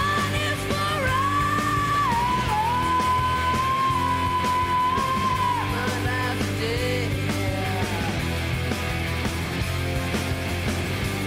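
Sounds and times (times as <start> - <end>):
distorted guitars: 0.0 - 11.2
heavy drums: 0.0 - 11.2
loud dense rock music: 0.0 - 11.2
woman's long sustained scream in a rock song: 0.9 - 6.0.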